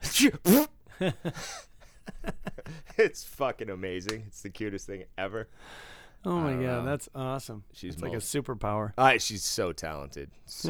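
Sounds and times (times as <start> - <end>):
voice imitating a sneeze followed by a fart: 0.0 - 0.7
speech: 0.2 - 10.6.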